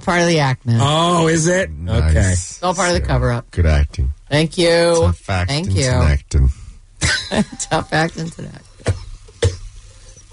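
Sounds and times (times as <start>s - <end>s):
speech: 0.0s - 6.6s, 7.3s - 9.0s
strained vocal noises: 0.7s - 4.3s, 4.9s - 6.6s, 8.9s - 10.3s
person coughing harshly: 7.0s - 7.6s.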